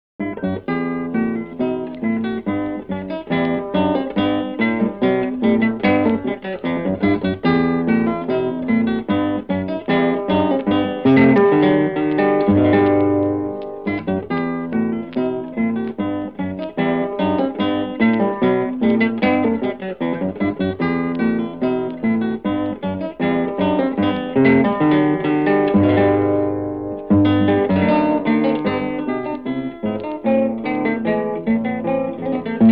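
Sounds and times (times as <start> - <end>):
classical guitar piece: 0.2 - 32.6.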